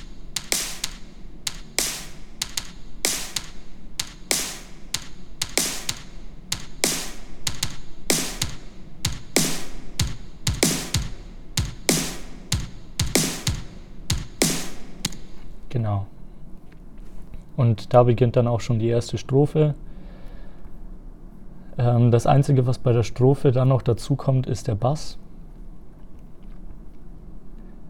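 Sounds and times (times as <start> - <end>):
hi-hat doubling the kick drum: 0.0 - 15.5
kick drum beat: 0.0 - 15.5
speech: 17.6 - 19.9, 21.8 - 25.2.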